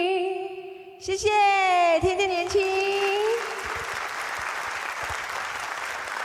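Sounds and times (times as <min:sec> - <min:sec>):
speech: 0:01.0 - 0:02.7
audience applause: 0:02.5 - 0:06.2.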